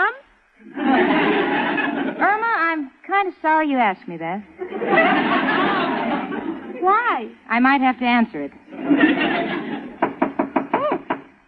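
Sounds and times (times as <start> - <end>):
noisy sound: 0.0 - 11.4
laughter: 0.6 - 2.4, 4.6 - 6.8, 8.7 - 10.3
speech: 3.2 - 5.8, 6.8 - 9.7
knocking on a door: 10.0 - 11.3.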